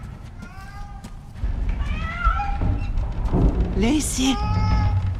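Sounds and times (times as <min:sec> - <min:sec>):
cat meowing in drawn-out rising and falling cries: 0:00.4 - 0:01.0, 0:01.8 - 0:02.9, 0:04.1 - 0:05.1
speech: 0:03.8 - 0:04.6
person calling out to a cat: 0:03.9 - 0:04.4.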